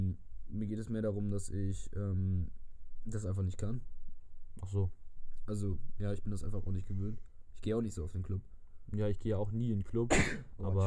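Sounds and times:
speech: 0.7 - 4.0, 4.6 - 10.8
person sneezing: 10.1 - 10.5.

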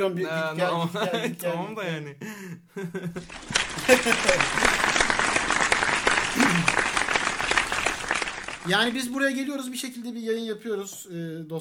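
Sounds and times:
speech: 0.0 - 5.2, 8.6 - 11.5
laughter: 2.7 - 9.1
applause from a gathered audience: 3.2 - 9.2.

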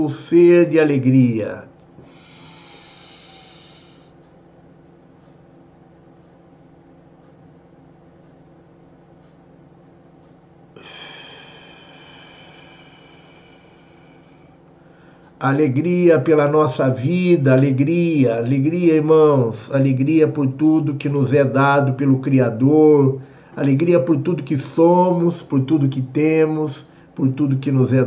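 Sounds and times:
speech: 0.0 - 2.2, 15.4 - 28.0
steady low rumble: 0.0 - 28.0
deep drawn-out breathing during a group breathing exercise: 2.0 - 4.2, 10.8 - 15.4, 23.2 - 23.6.

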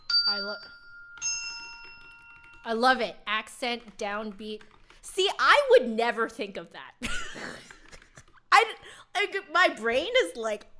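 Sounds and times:
bells ringing: 0.0 - 2.7
speech: 0.3 - 1.4, 2.6 - 7.7, 8.6 - 10.7.

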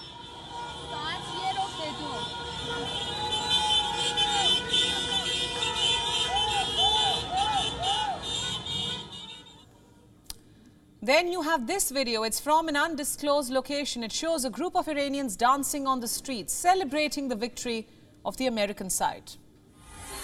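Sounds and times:
car horns honking on a busy street: 0.0 - 9.7
speech: 11.1 - 19.4.

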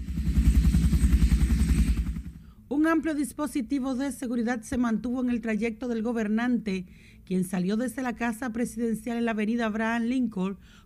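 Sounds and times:
Air Force helicopter rotor thumping overhead: 0.0 - 2.4
speech: 2.8 - 10.8.

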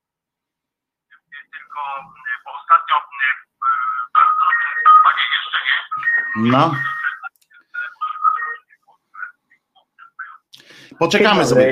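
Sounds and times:
speech: 1.2 - 4.2, 5.6 - 6.9, 11.0 - 11.7
phone ringing with a bright melodic ringtone: 3.2 - 9.3.

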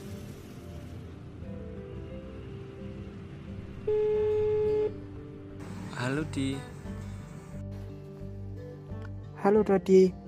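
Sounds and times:
telephone ringback tone: 3.9 - 5.0
speech: 6.2 - 6.8, 9.4 - 10.2.

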